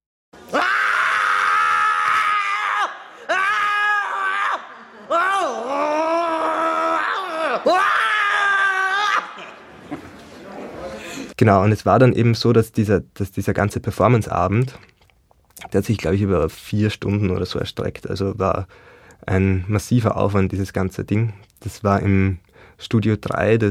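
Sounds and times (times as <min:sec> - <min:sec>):
human voice letting out long loud sustained screams: 0:00.5 - 0:09.4
laughter: 0:04.4 - 0:05.9, 0:08.4 - 0:11.3
speech: 0:11.4 - 0:14.9, 0:15.7 - 0:23.6.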